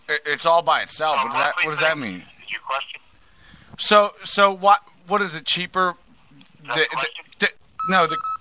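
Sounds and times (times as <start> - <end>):
speech: 0.1 - 3.0, 3.8 - 6.0, 6.6 - 8.3
electronic telephone tones as a call is lost: 7.8 - 8.4
steady telephone beep: 7.8 - 8.4.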